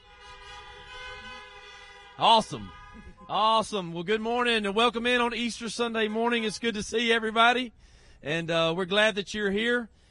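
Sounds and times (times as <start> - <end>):
car horns honking outdoors in a parking lot: 0.0 - 7.5
speech: 2.2 - 10.0.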